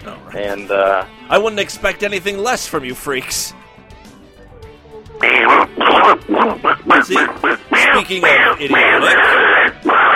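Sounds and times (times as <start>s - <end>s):
speech: 0.0s - 3.6s, 5.2s - 10.1s
person's voice imitating duck quacks: 4.8s - 10.1s.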